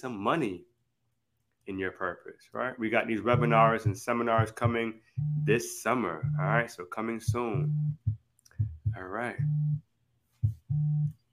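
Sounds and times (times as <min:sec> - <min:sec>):
speech: 0:00.0 - 0:00.7, 0:01.7 - 0:09.9, 0:10.7 - 0:11.2
phone buzzing with a low electronic buzz: 0:03.4 - 0:03.9, 0:05.2 - 0:05.6, 0:07.5 - 0:08.0, 0:09.4 - 0:09.8, 0:10.7 - 0:11.1.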